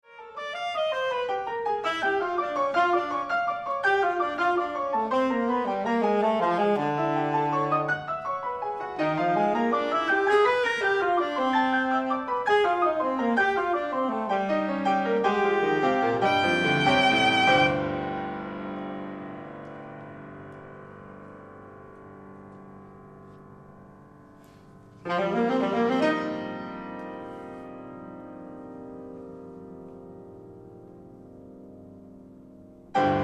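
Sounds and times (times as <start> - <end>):
saxophone music: 0.1 - 18.2, 25.0 - 27.6.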